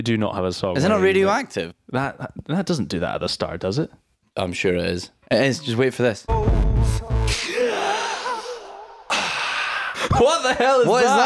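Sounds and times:
speech: 0.0 - 7.6, 10.1 - 11.2
sharp breathy vocal gasp: 7.3 - 10.2.

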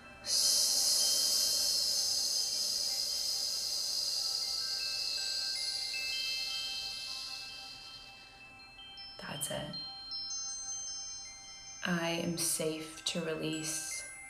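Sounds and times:
breath hissing out through mouth like a snake's hiss: 0.3 - 8.2
speech: 9.4 - 9.9, 11.9 - 13.9.

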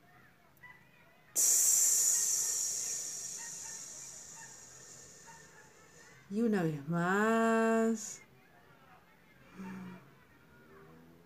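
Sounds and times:
person's hissing exhale imitating a snake during a breathing exercise: 1.4 - 6.3
speech: 6.3 - 8.3.

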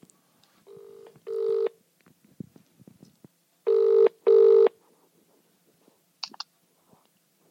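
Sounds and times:
telephone ringing tone through a handset: 0.7 - 1.8, 3.7 - 4.8.

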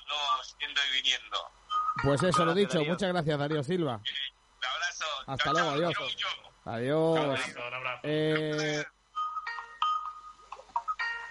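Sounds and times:
speech: 0.1 - 4.3, 5.0 - 9.0
phone ringtone of bright electronic notes: 1.7 - 2.7, 8.6 - 11.3.

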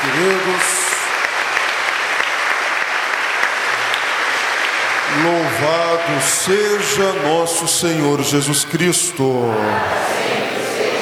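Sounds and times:
church audience applauding: 0.0 - 10.9
speech: 0.2 - 0.7, 5.6 - 10.8.

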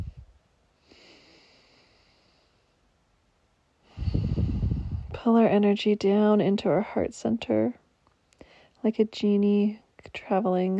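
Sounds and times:
deep breaths drawn during a guided meditation: 0.0 - 2.8, 3.8 - 5.2
speech: 5.2 - 7.8, 8.8 - 10.7.

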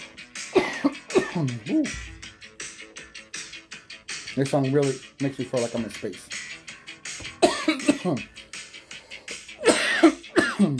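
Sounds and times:
harsh raspy coughs: 0.5 - 1.9, 7.4 - 8.3, 9.6 - 10.7
speech: 0.8 - 2.2, 4.4 - 6.4, 7.7 - 8.4.

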